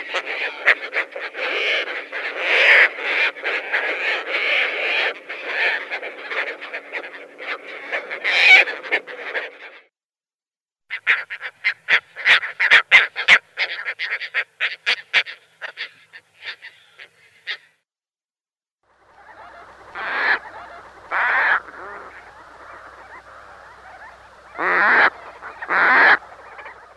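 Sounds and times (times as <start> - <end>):
Caspian tern giving harsh rasping calls: 0.0 - 9.5, 10.9 - 17.7, 19.1 - 26.9.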